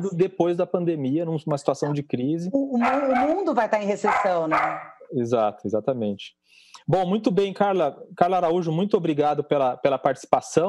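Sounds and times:
speech: 0.0s - 10.6s
dogs barking and yipping: 2.8s - 5.0s.

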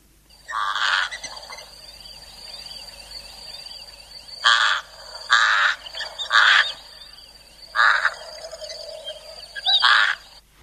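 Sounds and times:
faint high twittering: 0.3s - 10.4s
pied crow giving harsh raspy caws: 0.5s - 1.3s, 4.4s - 6.8s, 7.7s - 8.4s, 9.7s - 10.4s.

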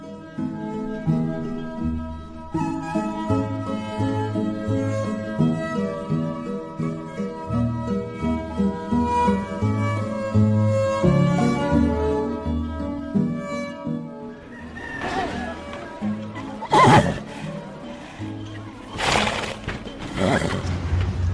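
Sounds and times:
steady tonal background: 0.0s - 19.0s
Lipizzaner horse neighing and whinnying at a Lipizzaner centre in South Africa: 16.4s - 17.4s, 19.0s - 20.7s.

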